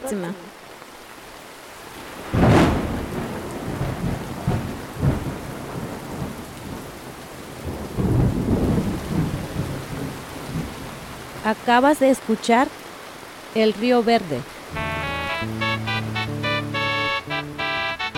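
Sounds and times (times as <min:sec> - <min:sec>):
speech: 0:00.0 - 0:00.6, 0:11.4 - 0:12.8, 0:13.5 - 0:14.5
heavy rain downpour: 0:00.0 - 0:18.1
deep rolling thunder rumbles: 0:02.3 - 0:11.4.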